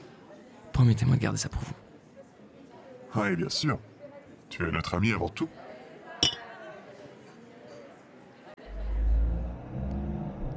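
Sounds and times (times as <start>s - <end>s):
speech: 0.8s - 1.9s, 3.1s - 3.9s, 4.5s - 5.6s
indistinct murmuring voices: 5.7s - 10.5s
sharp clink: 6.2s - 6.5s.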